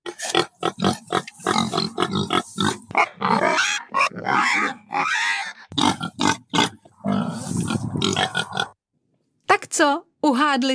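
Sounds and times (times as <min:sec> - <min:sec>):
pig grunting and oinking: 0:00.0 - 0:08.8
speech: 0:10.6 - 0:10.7.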